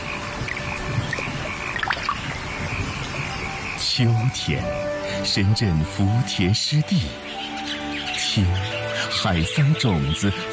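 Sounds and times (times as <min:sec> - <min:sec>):
rain splashing into standing water in a rice paddy field: 0:00.0 - 0:04.0
frogs chirping and croaking: 0:00.0 - 0:10.5
speech: 0:04.0 - 0:07.4, 0:08.4 - 0:10.5.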